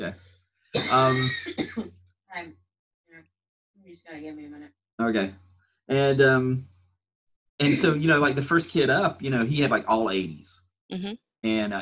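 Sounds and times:
speech: 0:00.0 - 0:01.9, 0:03.9 - 0:06.7, 0:07.6 - 0:11.8
person coughing: 0:00.8 - 0:01.8, 0:07.6 - 0:10.1
laughter: 0:00.9 - 0:01.4, 0:05.0 - 0:05.3, 0:05.9 - 0:06.6, 0:07.6 - 0:10.5, 0:11.5 - 0:11.8.

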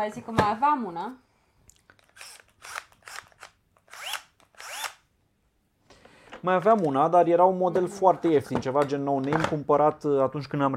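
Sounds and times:
speech: 0:00.0 - 0:01.3, 0:06.4 - 0:10.7
cordless drill-driver whirring: 0:02.0 - 0:05.0.

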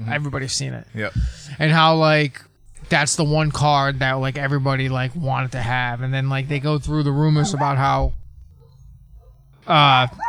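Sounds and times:
speech: 0:00.1 - 0:08.2, 0:09.7 - 0:10.2
dog whimpering: 0:06.8 - 0:10.2
dog bark-whine: 0:07.2 - 0:10.2.

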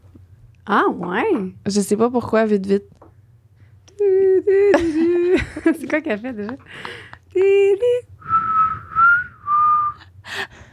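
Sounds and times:
speech: 0:00.7 - 0:03.1, 0:04.0 - 0:08.1
person whistling a short simple tune: 0:08.2 - 0:10.0.

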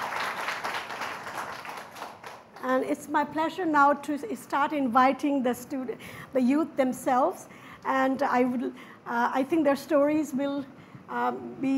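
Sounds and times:
crowd applauding: 0:00.0 - 0:02.6
speech: 0:02.7 - 0:11.7.

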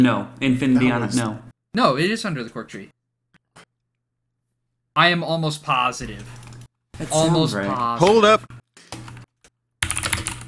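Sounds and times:
speech: 0:00.0 - 0:03.0, 0:05.0 - 0:08.6
rapid clacky typing on a mechanical keyboard: 0:06.1 - 0:06.7, 0:09.8 - 0:10.4.

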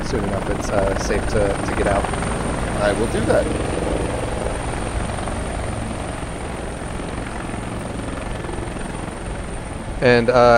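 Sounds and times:
helicopter landing with rotors spinning: 0:00.0 - 0:10.5
speech: 0:00.1 - 0:03.8, 0:10.0 - 0:10.5.

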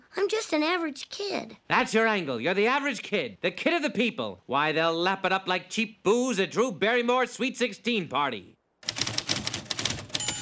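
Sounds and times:
speech: 0:00.2 - 0:08.6
keystrokes on a typewriter with no paper: 0:08.8 - 0:10.4.

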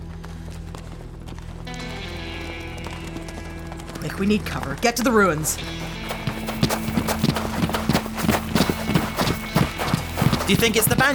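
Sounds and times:
speech: 0:04.0 - 0:06.0, 0:10.5 - 0:11.1
riders' horses galloping in a Western setting: 0:05.7 - 0:11.1.

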